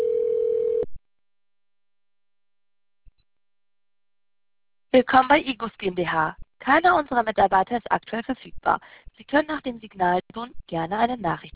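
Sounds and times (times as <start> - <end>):
telephone ringing tone while placing a call: 0.0 - 0.9
speech: 5.0 - 11.5.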